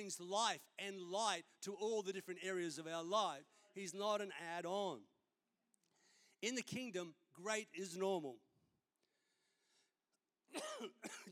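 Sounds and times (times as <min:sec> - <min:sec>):
speech: 0:00.0 - 0:05.1, 0:06.4 - 0:08.4, 0:10.5 - 0:11.3
loud harsh coughs close to the microphone: 0:10.5 - 0:11.3.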